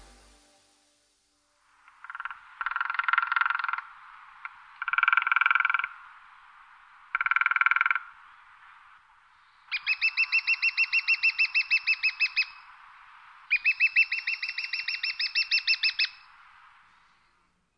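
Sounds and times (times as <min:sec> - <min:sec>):
lesser spotted woodpecker calling: 0:01.9 - 0:06.0, 0:07.1 - 0:08.1, 0:09.7 - 0:12.7, 0:13.5 - 0:16.3.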